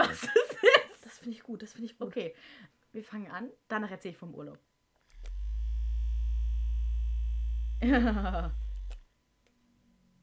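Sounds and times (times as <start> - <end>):
speech: 1.5 - 4.7, 7.8 - 8.6
small four-legged electric massager motor humming: 5.0 - 9.1
laughter: 7.8 - 8.6.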